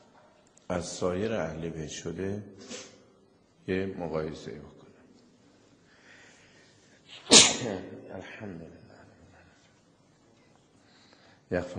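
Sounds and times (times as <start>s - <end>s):
speech: 0.7s - 2.9s, 3.7s - 4.8s, 7.6s - 8.8s, 11.5s - 11.7s
person sneezing: 2.6s - 3.0s, 7.1s - 7.8s
brief inhale: 5.9s - 6.8s.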